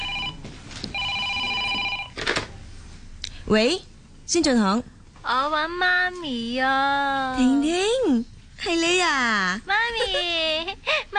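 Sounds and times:
telephone ringing with a bright electronic warble: 0.0s - 2.2s
speech: 3.5s - 11.0s.

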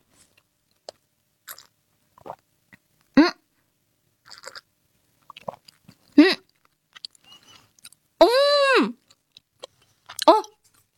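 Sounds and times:
chewing a mouthful of canned tuna with mayonnaise: 0.7s - 2.9s, 4.3s - 4.7s, 5.2s - 8.0s, 9.0s - 10.9s.

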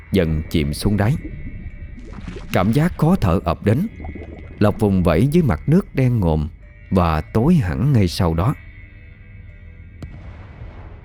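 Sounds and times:
speech: 0.1s - 1.4s, 2.2s - 4.0s, 4.6s - 8.6s
firework exploding on New Year's Eve: 10.0s - 11.0s.

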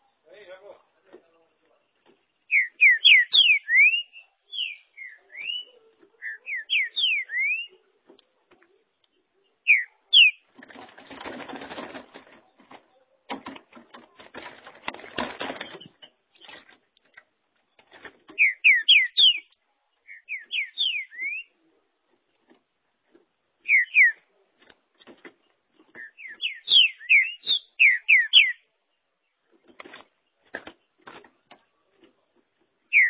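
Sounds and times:
green-winged saltator whistling song: 2.5s - 7.8s, 9.6s - 10.4s, 18.4s - 21.6s, 23.6s - 24.2s, 26.0s - 28.6s, 32.9s - 33.0s
rustling and clattering noise: 10.4s - 18.5s, 22.0s - 23.4s, 24.5s - 26.1s, 29.4s - 32.9s.

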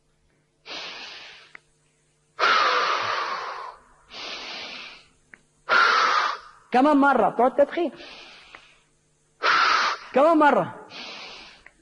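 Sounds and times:
deep breathing exercise with slow airy inhales and exhales: 0.7s - 1.6s, 2.4s - 6.5s, 8.0s - 10.0s, 10.9s - 11.8s
speech: 6.7s - 8.2s, 10.1s - 10.8s.

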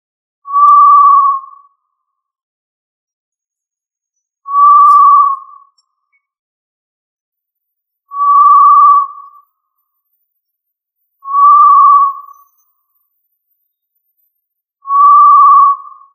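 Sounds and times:
tinamou pure level whistled call: 4.5s - 5.8s, 8.1s - 9.4s, 11.2s - 12.6s, 14.8s - 16.1s.

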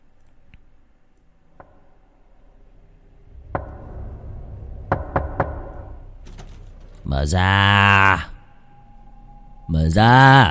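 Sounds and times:
low steady rush: 0.0s - 10.4s
knocking on a wooden door at night: 4.9s - 5.7s
speech: 7.1s - 8.3s, 9.9s - 10.4s.

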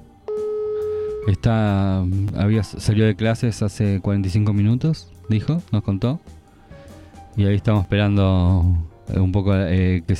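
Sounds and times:
telephone line tone on a call being placed: 0.3s - 1.4s
speech: 1.2s - 6.4s, 7.4s - 10.1s.

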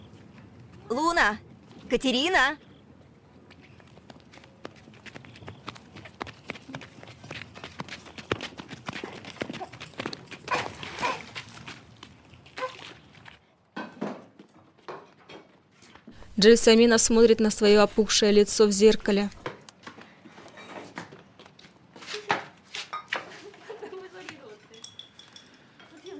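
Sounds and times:
speech: 0.9s - 2.7s, 16.4s - 19.4s
running footsteps in flip-flops splashing through puddles: 7.8s - 13.4s.

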